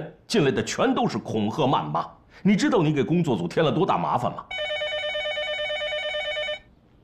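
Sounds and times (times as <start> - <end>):
speech: 0.0 - 4.8
faint room noise: 0.0 - 7.0
telephone ringing with a bright electronic tone: 4.5 - 6.7.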